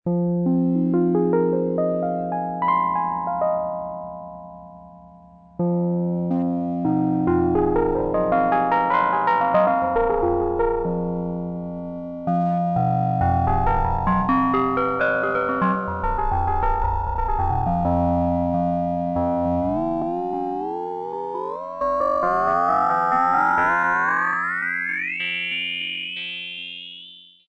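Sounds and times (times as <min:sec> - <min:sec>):
wurli electric piano: 0:00.1 - 0:26.9.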